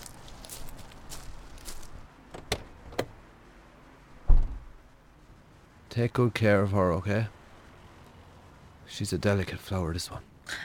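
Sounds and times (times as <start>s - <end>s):
soft shuffling footsteps: 0.0s - 2.8s
door handle clicks: 2.3s - 3.2s
heavier low thump: 4.3s - 4.8s
speech: 6.0s - 7.4s, 9.0s - 10.6s.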